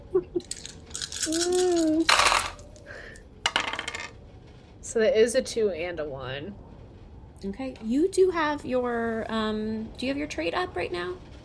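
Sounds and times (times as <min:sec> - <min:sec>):
two dice rolled onto a hard table: 0:00.5 - 0:02.8, 0:03.4 - 0:04.2
speech: 0:01.3 - 0:02.2, 0:05.0 - 0:06.7, 0:07.4 - 0:11.3.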